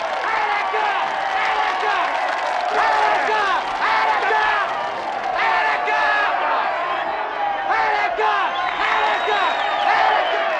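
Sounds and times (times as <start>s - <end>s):
large crowd roaring and cheering in a film scene: 0.0s - 10.5s.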